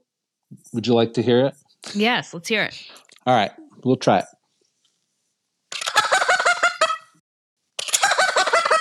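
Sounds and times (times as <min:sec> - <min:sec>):
speech: 0:00.5 - 0:04.4
turkey gobble imitated with a handheld gobbler call with cut-out bottom: 0:05.9 - 0:07.1, 0:07.9 - 0:08.8.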